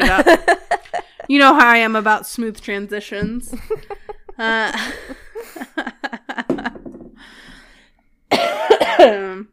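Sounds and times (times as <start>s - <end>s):
speech: 0.1s - 0.5s, 1.3s - 5.2s, 8.3s - 9.5s
person coughing: 8.3s - 9.4s.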